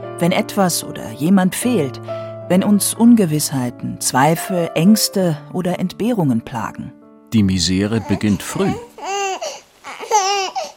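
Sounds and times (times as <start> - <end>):
speech: 0.2 - 8.9
baby wailing: 7.8 - 10.7.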